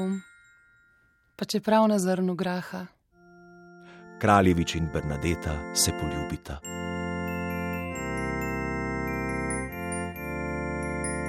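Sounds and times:
speech: 0.0s - 0.3s, 1.4s - 3.0s, 4.2s - 6.9s
wedding march on a full organ: 3.9s - 11.2s.

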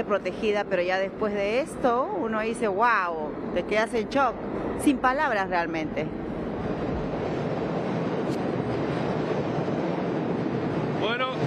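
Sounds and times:
speech: 0.0s - 6.2s
subway train rumbling past a platform: 0.0s - 11.4s.

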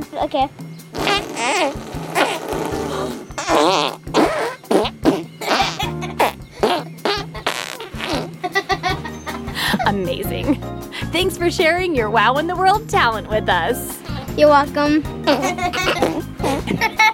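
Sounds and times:
speech: 0.2s - 2.0s, 11.5s - 16.3s
person making fart noises: 0.9s - 8.5s, 15.3s - 16.8s
laughter: 8.4s - 11.1s, 15.3s - 17.1s.

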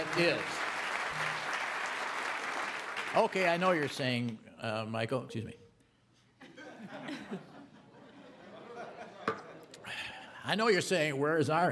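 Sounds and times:
crowd applauding: 0.0s - 4.3s
speech: 0.2s - 0.6s, 3.1s - 5.6s, 6.8s - 7.5s, 10.4s - 11.6s
laughter: 6.4s - 9.8s.

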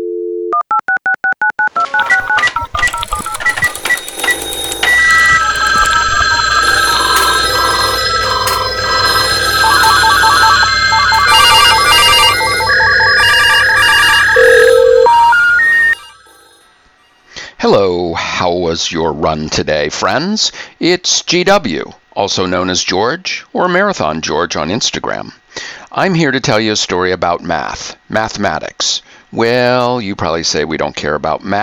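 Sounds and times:
touch-tone telephone dialing beeps: 0.0s - 16.6s
layered electronic telephone ringing and buzzing tones: 0.0s - 16.8s
speech: 18.7s - 31.6s.

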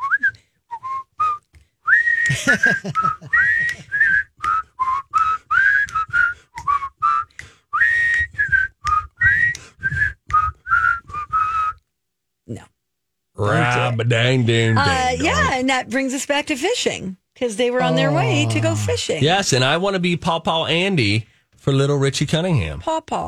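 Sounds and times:
person whistling a jaunty TV theme-tune melody: 0.0s - 11.9s
laughter: 2.3s - 4.0s, 13.4s - 15.6s, 17.8s - 19.1s
speech: 2.3s - 4.0s, 13.4s - 23.2s.

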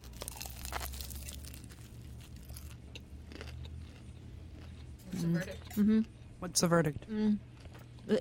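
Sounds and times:
crunchy bites and chewing of a crisp fried egg roll: 0.0s - 4.9s
low steady hum: 0.0s - 8.2s
speech: 5.2s - 7.5s, 8.1s - 8.2s.

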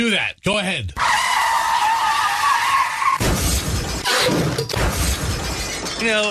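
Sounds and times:
speech: 0.0s - 1.2s, 6.0s - 6.3s
bus tires skidding and squealing: 1.0s - 3.2s
heavy bus crash with crunching impacts: 3.2s - 5.9s
glass breaking: 3.2s - 6.3s.

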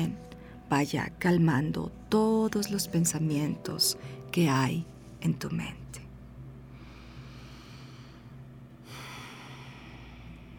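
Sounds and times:
speech: 0.0s - 5.8s
low hum: 0.0s - 10.5s
slow conscious breathing in and out: 6.6s - 10.5s.

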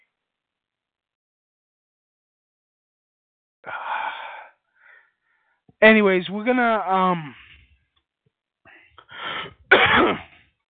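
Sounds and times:
speech: 5.8s - 7.4s
stressed person clearing throat: 9.7s - 10.4s
stressed person coughing: 9.7s - 10.4s.

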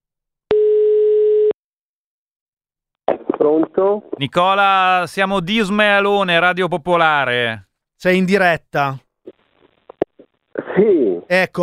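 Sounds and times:
telephone line tone while calling someone: 0.5s - 1.6s
speech: 3.4s - 9.0s, 10.8s - 11.6s.

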